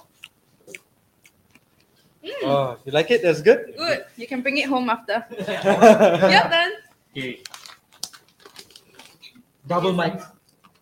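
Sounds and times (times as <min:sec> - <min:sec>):
crunchy snack being chewed close to the mic: 0:00.0 - 0:01.9, 0:07.5 - 0:09.4, 0:10.5 - 0:10.8
speech: 0:02.4 - 0:07.6, 0:09.7 - 0:10.4
laughter: 0:05.3 - 0:06.6.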